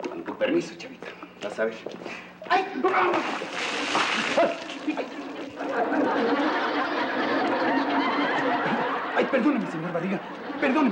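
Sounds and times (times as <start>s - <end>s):
speech: 0.4s - 10.8s
water thrown out of a bucket splashing: 2.9s - 5.4s
people laughing: 3.6s - 10.8s.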